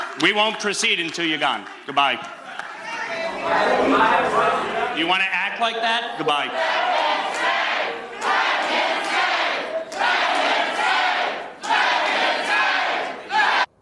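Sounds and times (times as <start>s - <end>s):
speech: 0.2s - 2.4s, 3.4s - 6.8s
large town hall crowd shouting in chant-like bursts: 2.4s - 5.0s, 6.1s - 13.7s.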